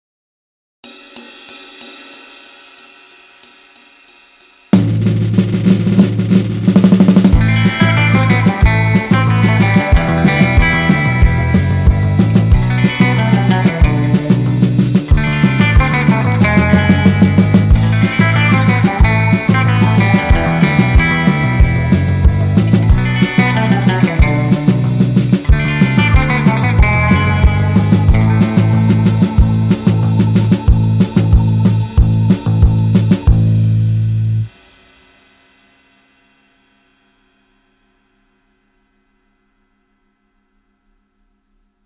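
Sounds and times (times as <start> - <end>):
surf backing track: 4.7 - 34.7.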